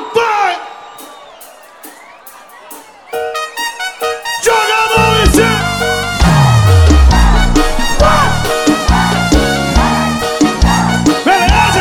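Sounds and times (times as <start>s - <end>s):
crowd shouting and cheering: 0.0s - 11.7s.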